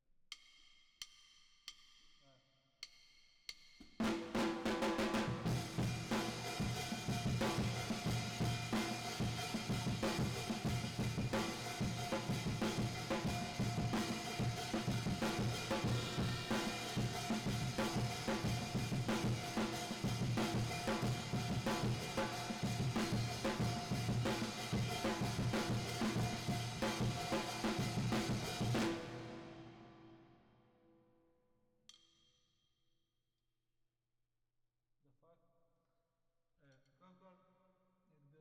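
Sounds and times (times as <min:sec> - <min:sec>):
drums with reverb: 0:02.8 - 0:30.2.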